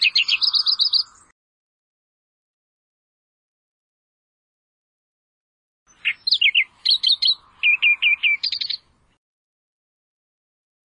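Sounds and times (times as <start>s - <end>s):
Australian reed warbler chirping with a rattling flourish: 0.0s - 1.3s, 5.9s - 9.2s.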